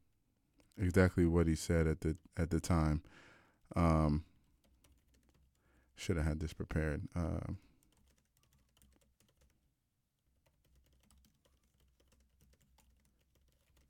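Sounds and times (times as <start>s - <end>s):
speech: 0.8s - 4.3s, 6.0s - 7.7s
typing on computer keyboard: 4.5s - 5.6s, 7.6s - 9.7s, 10.3s - 13.8s.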